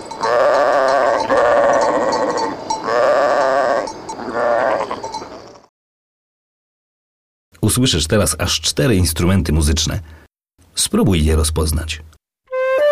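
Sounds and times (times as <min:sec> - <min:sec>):
ram bleating: 0:00.2 - 0:05.7
speech: 0:07.7 - 0:10.2, 0:10.8 - 0:12.2.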